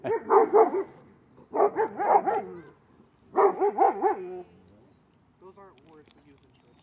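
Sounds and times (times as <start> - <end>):
dog yelping barks: 0.0 - 2.7, 3.4 - 4.4.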